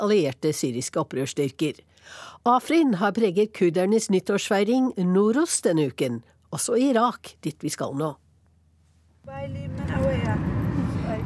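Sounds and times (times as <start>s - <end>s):
speech: 0.0s - 8.2s, 9.2s - 10.5s
moving car engine and road rumble heard from inside the cabin: 9.2s - 11.2s.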